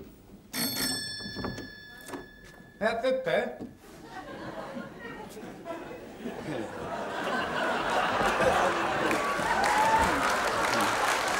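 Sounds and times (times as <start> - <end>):
faint room noise: 0.0 - 11.3
bright metallic doorbell ringing at the door: 0.5 - 3.6
speech: 2.8 - 3.8
laughter: 3.9 - 11.3.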